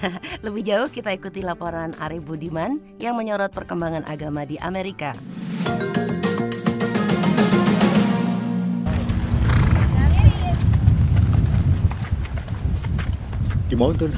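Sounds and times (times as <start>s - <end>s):
speech: 0.0s - 6.1s, 13.8s - 14.1s
music: 0.0s - 8.9s
horses' hooves clip-clopping outdoors: 8.9s - 14.1s.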